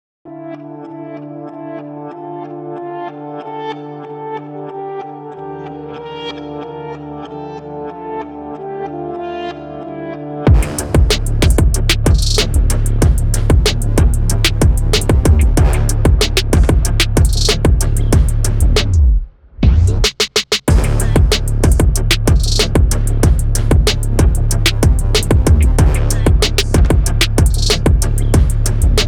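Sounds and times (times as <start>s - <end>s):
dance sequence music: 10.5s - 19.1s, 20.7s - 29.0s.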